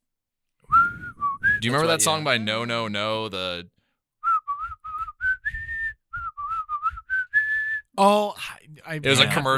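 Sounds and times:
melodic whistling in a song: 0:00.7 - 0:01.9, 0:04.2 - 0:07.9
speech: 0:01.6 - 0:03.8, 0:08.0 - 0:09.5.

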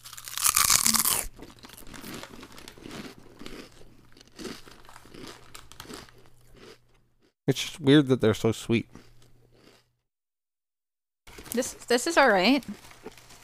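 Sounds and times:
crinkle of a chips bag: 0:00.0 - 0:06.7, 0:11.3 - 0:13.4
person crunching and chewing sweet crunchy chips: 0:00.0 - 0:07.3, 0:08.9 - 0:09.9, 0:12.7 - 0:13.4
speech: 0:07.5 - 0:09.0, 0:11.6 - 0:12.9.

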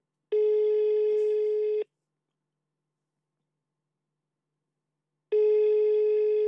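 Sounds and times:
ringing tone of an outgoing telephone call: 0:00.3 - 0:01.8, 0:05.3 - 0:06.4.

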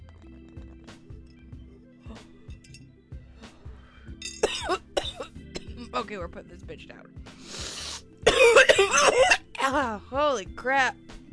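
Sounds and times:
person coughing after bong hit: 0:04.4 - 0:05.9, 0:08.3 - 0:09.6
speech: 0:06.0 - 0:07.3, 0:08.5 - 0:11.0.

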